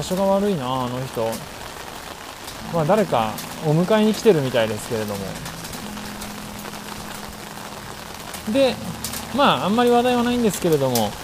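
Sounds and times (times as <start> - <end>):
speech: 0.0 - 1.6, 2.6 - 5.5, 8.5 - 11.2
steady rain falling outdoors: 0.0 - 11.2
low steady hum: 2.6 - 11.2.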